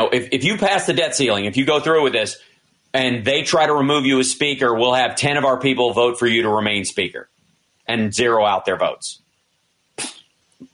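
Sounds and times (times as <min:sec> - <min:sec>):
speech: 0:00.0 - 0:07.3, 0:07.9 - 0:09.2, 0:10.0 - 0:10.2
cat sneezing: 0:10.0 - 0:10.2.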